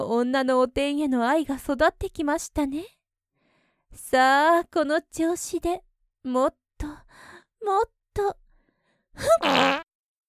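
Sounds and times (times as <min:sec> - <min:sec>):
speech: 0:00.1 - 0:03.0, 0:03.9 - 0:06.6, 0:07.6 - 0:08.4, 0:09.2 - 0:09.8
fart: 0:09.4 - 0:09.9.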